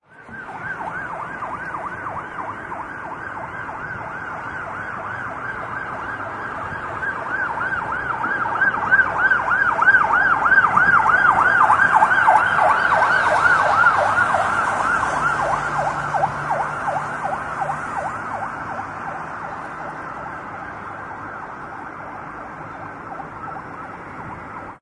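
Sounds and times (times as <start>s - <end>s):
police car siren: 0.0s - 24.8s.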